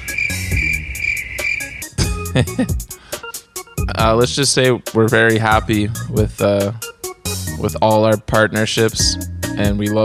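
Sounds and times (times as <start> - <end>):
cricket chirping sound effect, high continuous trill: 0.0 - 2.0
people laughing: 2.0 - 2.8
speech: 2.4 - 3.1, 4.0 - 6.9, 7.6 - 10.0.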